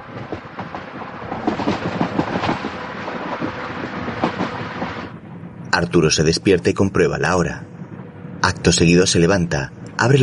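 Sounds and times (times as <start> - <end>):
rhythmic clickety-clack train wheel beats: 0.0 - 5.1
train with sleeper cars rolling along the rails: 0.0 - 10.2
speech: 5.7 - 7.7, 8.6 - 10.2.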